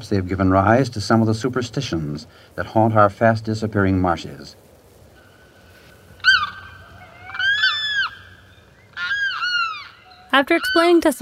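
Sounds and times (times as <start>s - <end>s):
speech: 0.0s - 4.6s, 10.4s - 11.2s
limpkin wailing cries: 6.2s - 11.2s.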